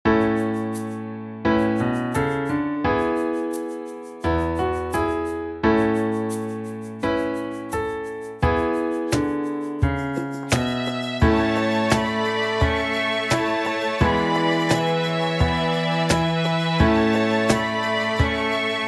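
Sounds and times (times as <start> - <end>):
piano: 0.0 - 18.8
drums: 9.2 - 18.8
cello: 10.2 - 18.8
violins: 10.2 - 18.8.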